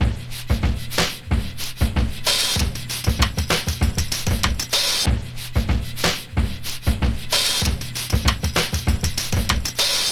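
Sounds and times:
drum groove in B key: 0:00.0 - 0:10.0.

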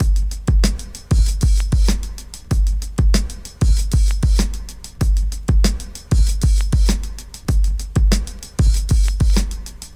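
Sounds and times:
96 bpm breakbeat drum loop in G: 0:00.0 - 0:09.9.

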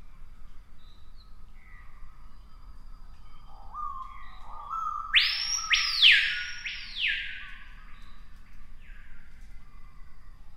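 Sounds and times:
screaming piha screaming whistle: 0:04.8 - 0:07.4.

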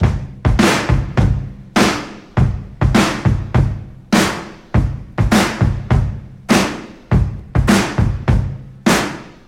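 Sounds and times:
102 bpm breakbeat drum loop with kick tuned to G sharp: 0:00.0 - 0:09.4.

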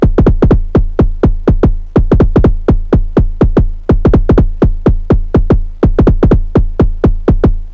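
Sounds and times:
analog techno percussion from Volca drum: 0:00.0 - 0:07.6
analog techno kick drum from Volca drum: 0:00.0 - 0:07.7.

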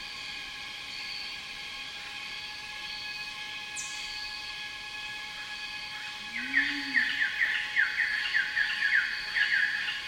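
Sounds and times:
bird calling in a rainforest: 0:03.8 - 0:04.2, 0:06.3 - 0:10.0.

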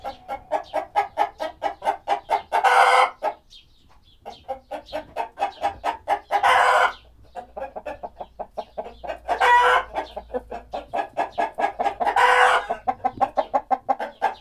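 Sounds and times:
chicken clucking: 0:00.0 - 0:14.3.

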